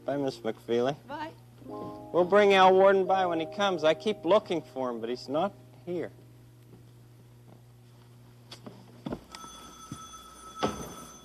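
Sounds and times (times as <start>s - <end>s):
speech: 0.1s - 6.2s
telephone ringing with a bright sustained bell tone: 9.3s - 11.2s.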